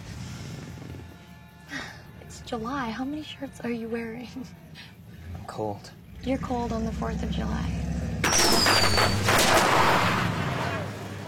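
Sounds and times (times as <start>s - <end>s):
speech: 2.5s - 4.6s, 5.5s - 7.8s
firecrackers going off: 8.2s - 10.8s.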